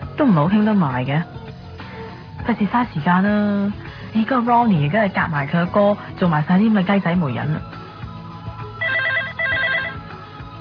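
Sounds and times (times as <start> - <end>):
speech: 0.2 - 1.4, 2.4 - 7.8
telephone ringing in electronic warbling trills: 8.8 - 10.2.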